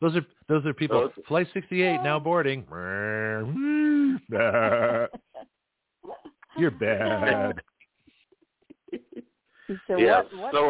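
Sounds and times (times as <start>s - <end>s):
speech: 0.0s - 5.3s, 6.0s - 7.7s, 9.7s - 10.6s
person imitating a cow mooing: 2.7s - 5.1s, 6.6s - 7.6s
laughter: 4.2s - 5.4s, 6.6s - 7.6s, 8.7s - 9.2s.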